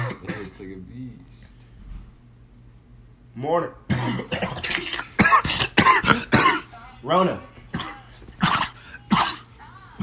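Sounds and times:
person coughing harshly: 0.0 - 0.6, 3.9 - 6.7, 7.7 - 10.0
low steady hum: 0.0 - 10.0
speech: 0.6 - 1.5, 3.4 - 5.0, 7.0 - 7.5.

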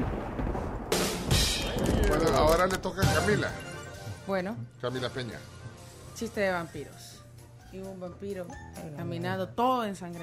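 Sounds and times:
thunder rumble: 0.0 - 2.9
harsh crackle: 0.0 - 3.0
speech: 2.5 - 3.7, 4.3 - 5.6, 6.2 - 7.1, 7.7 - 10.2.

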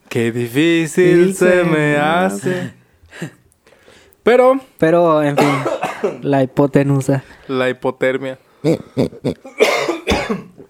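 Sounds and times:
speech: 0.2 - 3.4, 4.2 - 9.7, 10.3 - 10.6
man coughing: 5.4 - 6.3, 9.4 - 10.6.

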